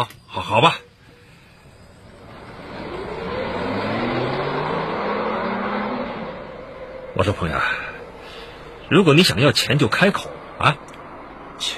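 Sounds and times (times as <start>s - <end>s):
speech: 0.0s - 0.8s, 7.2s - 7.8s, 8.9s - 10.9s, 11.6s - 11.7s
car driving: 0.4s - 11.7s.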